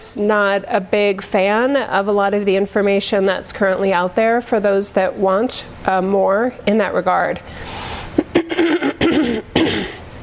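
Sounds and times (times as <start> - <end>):
speech: 0.1 - 8.9
person clearing throat: 8.2 - 10.0.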